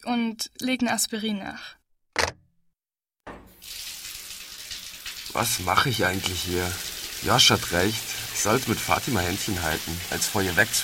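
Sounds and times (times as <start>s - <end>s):
speech: 0.0s - 1.8s, 5.3s - 10.8s
clunk: 3.3s - 3.6s
water gushing from a tap into a sink: 3.5s - 10.8s.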